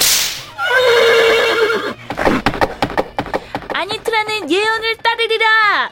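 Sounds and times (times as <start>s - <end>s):
whip cracking: 0.0s - 0.6s, 2.1s - 3.8s
horse whinnying: 0.6s - 2.5s
hoofbeats of a horse galloping away: 1.6s - 5.7s.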